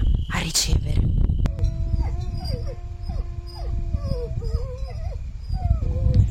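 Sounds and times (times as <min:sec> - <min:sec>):
low rumbling background: 0:00.0 - 0:06.2
speech: 0:00.4 - 0:00.8
person imitating a wolf howl to call wolves: 0:01.5 - 0:04.8.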